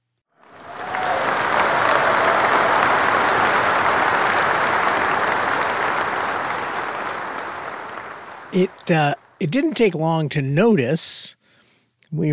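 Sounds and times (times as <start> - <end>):
crowd applauding and cheering: 0.4 - 9.9
speech: 8.6 - 11.4, 12.1 - 12.3.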